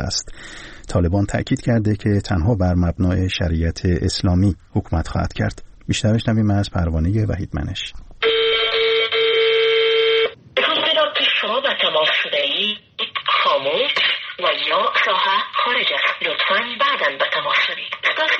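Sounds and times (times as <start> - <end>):
speech: 0.0 - 8.3, 12.0 - 18.3
steady electronic phone line tone: 8.2 - 10.4
woman's telephone-filtered automated recorded message: 10.6 - 18.3.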